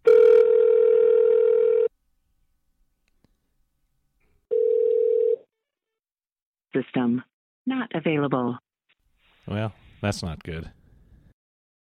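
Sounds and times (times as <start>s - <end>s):
telephone dial tone: 0.0s - 1.9s, 4.5s - 5.5s
speech: 7.0s - 8.6s, 9.5s - 10.8s.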